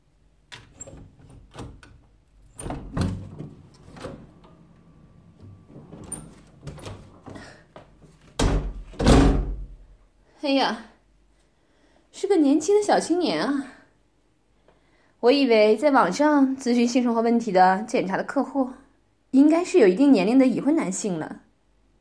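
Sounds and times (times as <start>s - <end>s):
door being unlatched and opened with clicks and rattles: 0.5s - 4.7s, 5.4s - 7.4s
heavy door thuds as it swings and settles: 0.6s - 7.6s, 8.2s - 9.8s
speech: 10.4s - 10.9s, 12.3s - 13.8s, 15.2s - 21.4s.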